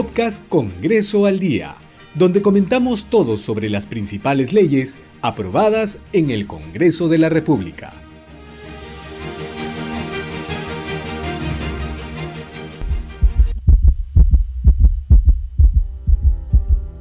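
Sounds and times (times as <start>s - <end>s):
speech: 0.0s - 8.0s
music: 0.0s - 16.9s
heartbeat thumping in a lub-dub rhythm: 12.8s - 16.9s.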